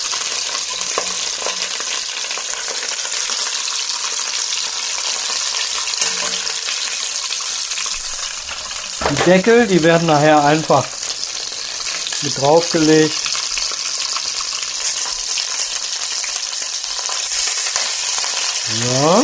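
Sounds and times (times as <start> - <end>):
whole bell peppers frying and sizzling in a pan: 0.0 - 19.2
fork or tongs clattering in a pan: 8.1 - 10.7
speech: 9.2 - 11.0, 12.2 - 13.3.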